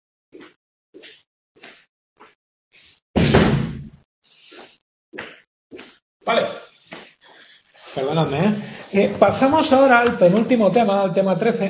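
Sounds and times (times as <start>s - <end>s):
heavy door thudding shut: 3.2s - 3.9s
speech: 6.3s - 6.6s, 8.0s - 11.6s.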